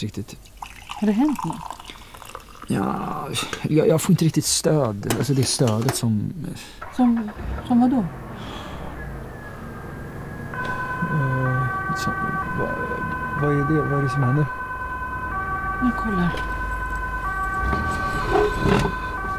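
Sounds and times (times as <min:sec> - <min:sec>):
speech: 0:00.0 - 0:01.8, 0:02.7 - 0:08.6, 0:12.0 - 0:14.6, 0:15.8 - 0:16.5
low traffic rumble: 0:04.9 - 0:19.3
two-tone ambulance siren: 0:08.2 - 0:19.3.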